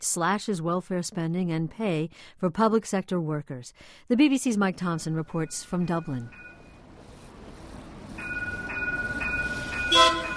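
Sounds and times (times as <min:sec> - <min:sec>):
speech: 0:00.0 - 0:06.5
yellow-striped tram rolling through a Dublin street: 0:04.7 - 0:10.3
short bright tram horn or bell toot: 0:07.9 - 0:10.3.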